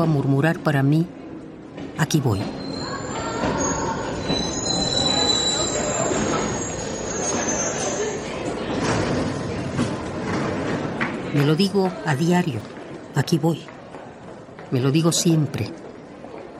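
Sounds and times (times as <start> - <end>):
speech: 0.0 - 1.2, 2.0 - 2.6, 11.3 - 13.7, 14.7 - 15.8
metro train rumbling rail noise: 1.2 - 12.0
metro train wheels squealing: 2.4 - 8.4.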